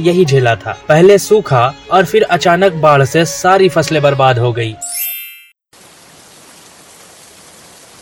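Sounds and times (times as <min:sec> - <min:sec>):
speech: 0:00.0 - 0:04.9
heavy rain falling: 0:05.8 - 0:08.0.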